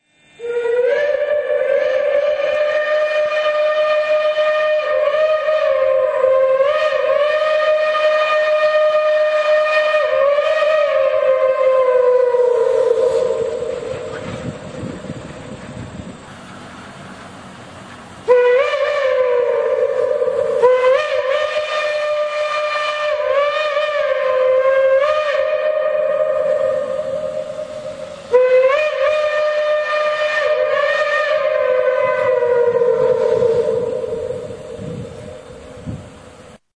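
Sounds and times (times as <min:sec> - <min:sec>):
ghost whistle: 0:00.0 - 0:15.8, 0:18.2 - 0:36.3.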